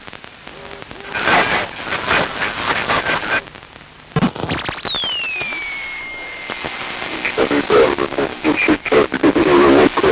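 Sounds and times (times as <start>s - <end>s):
radio transmission with crackling static bursts: 0.2s - 10.1s
descending whistling tone: 4.5s - 6.5s.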